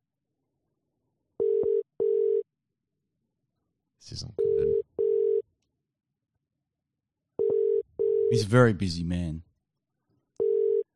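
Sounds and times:
telephone ringing tone heard down the line during a live phone call: 1.4s - 2.4s, 4.4s - 5.4s, 7.4s - 8.4s, 10.4s - 10.9s
speech: 4.1s - 4.9s, 8.3s - 9.5s.

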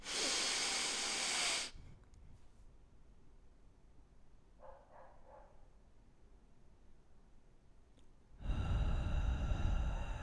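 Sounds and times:
church congregation breathing out together in a breathing exercise: 0.0s - 1.8s, 8.4s - 10.2s.

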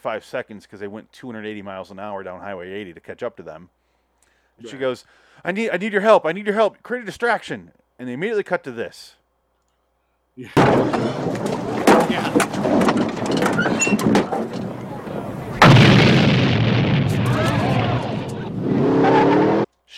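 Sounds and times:
speech: 0.0s - 3.8s, 4.6s - 9.2s, 10.4s - 11.5s, 13.6s - 14.6s
gunfire in an action film scene: 10.6s - 18.8s
bomb explosions in an action film scene: 10.6s - 19.7s
dense roaring rumble: 10.6s - 19.7s.

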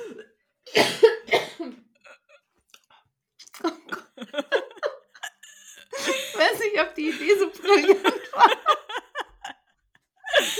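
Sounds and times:
woman coughing: 0.0s - 2.4s, 3.7s - 8.4s
speech: 0.7s - 1.1s
laughter: 3.7s - 10.5s.

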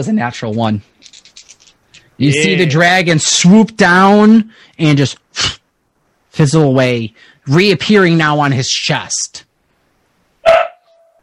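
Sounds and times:
speech: 0.0s - 1.2s, 2.2s - 5.6s, 6.4s - 9.5s
dog barking: 10.4s - 11.2s.

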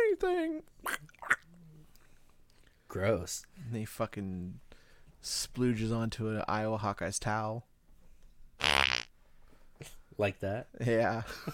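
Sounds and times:
speech: 0.2s - 1.2s, 2.9s - 7.7s, 9.8s - 11.5s
blown raspberry imitating a fart: 8.6s - 9.1s.

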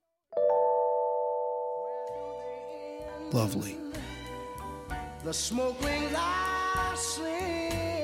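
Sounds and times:
six sung notes played together as one chord: 0.4s - 4.1s
speech: 3.3s - 3.9s, 5.2s - 7.9s.

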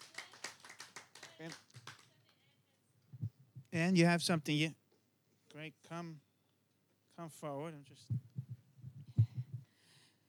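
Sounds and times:
small crowd applauding at a church service: 0.0s - 2.4s
speech: 1.4s - 1.8s, 3.8s - 4.8s, 5.6s - 6.3s, 7.2s - 8.3s.

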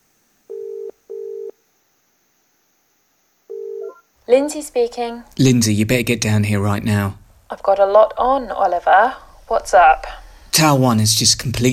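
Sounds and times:
telephone ringing tone heard down the line: 0.5s - 1.6s, 3.5s - 4.1s
speech: 4.3s - 11.7s.

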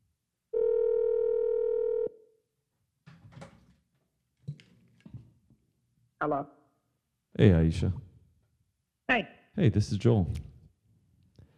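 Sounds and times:
telephone ringing tone as a call is placed: 0.5s - 2.2s
speech: 6.2s - 6.6s, 7.4s - 8.0s, 9.1s - 10.4s.

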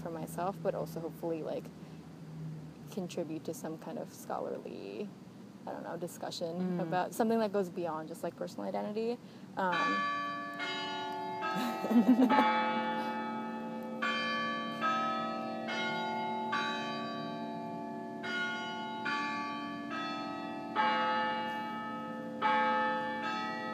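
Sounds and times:
speech: 0.2s - 2.0s, 2.9s - 10.7s, 11.6s - 12.9s
church bells ringing the hour: 9.7s - 23.7s
laughter: 11.6s - 12.5s.

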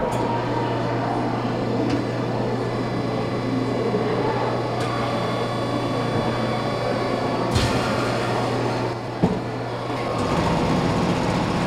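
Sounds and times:
Mold-A-Rama vending machine in a museum rumbling while molding a plastic chick: 0.0s - 11.6s
brief clunks of a Mold-A-Rama vending machine: 7.5s - 8.2s.

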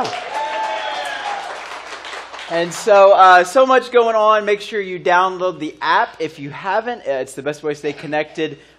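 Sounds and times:
crowd applauding: 0.0s - 3.1s
speech: 2.5s - 8.7s.

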